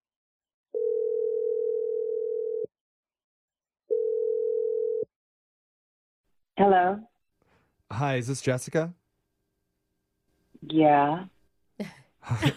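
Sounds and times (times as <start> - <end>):
telephone dial tone: 0.8 - 2.7, 3.9 - 5.1
speech: 6.6 - 7.1, 7.9 - 9.0, 10.7 - 12.5.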